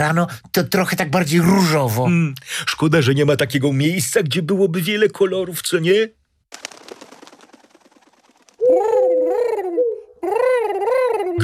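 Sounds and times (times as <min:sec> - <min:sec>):
speech: 0:00.0 - 0:06.8
pigeon wings fluttering rapidly: 0:06.4 - 0:09.7
pigeon cooing with warbling coos: 0:08.6 - 0:11.4.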